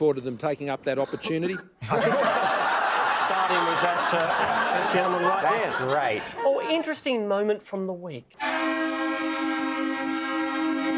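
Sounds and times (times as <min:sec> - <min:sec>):
speech: 0:00.0 - 0:02.5, 0:03.3 - 0:08.5
laughter: 0:01.8 - 0:06.8
Kenworth truck air horn blast: 0:08.4 - 0:10.9.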